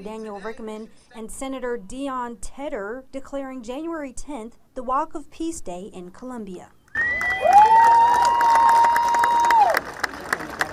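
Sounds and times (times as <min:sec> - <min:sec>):
speech: 0:00.0 - 0:06.8
long rising-and-falling whoop: 0:06.9 - 0:09.8
massive crowd at a peace walk cheering and applauding: 0:06.9 - 0:10.7.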